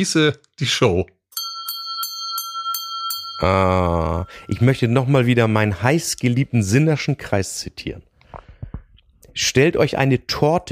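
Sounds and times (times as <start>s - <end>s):
speech: 0.0s - 1.2s, 3.4s - 8.1s, 9.4s - 10.7s
small handbell ringing: 1.3s - 4.5s.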